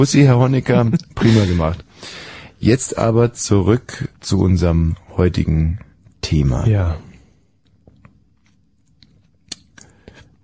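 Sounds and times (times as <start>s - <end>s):
speech: 0.0s - 7.1s
moist mouth clicks: 7.6s - 10.3s
quiet chewing: 7.6s - 10.3s
crunchy snaps while chewing: 7.6s - 10.4s.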